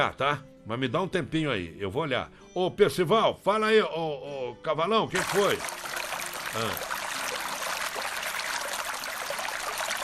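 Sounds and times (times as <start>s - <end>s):
speech: 0.0s - 5.9s, 6.5s - 7.0s
water pouring into a container: 5.2s - 10.0s.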